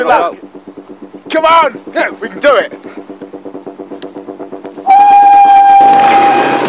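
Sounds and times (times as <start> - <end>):
speech: 0.0 - 0.4, 1.3 - 2.8
rhythmic thumps: 0.0 - 6.6
rushing rumbling noise: 0.0 - 6.6
shrill whistle blast to start a race: 4.8 - 6.6.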